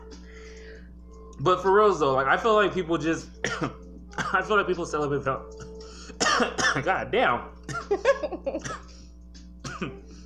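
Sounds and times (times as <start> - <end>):
faint steady hum: 0.0 - 10.2
speech: 1.4 - 5.6, 6.4 - 8.9, 9.8 - 10.0
person coughing: 3.4 - 4.5, 5.6 - 6.9, 7.7 - 8.9, 9.7 - 10.0.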